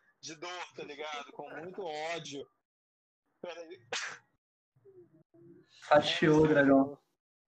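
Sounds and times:
speech: 0.2 - 2.6, 3.4 - 4.3, 4.9 - 7.0
stifled sneeze: 3.9 - 4.3.

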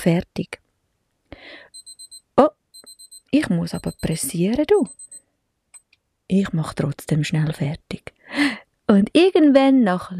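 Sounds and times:
speech: 0.0 - 0.6, 2.4 - 2.6, 3.3 - 5.0, 6.3 - 10.1
kitchen timer alarm high beeps: 1.8 - 2.2, 2.8 - 5.2.

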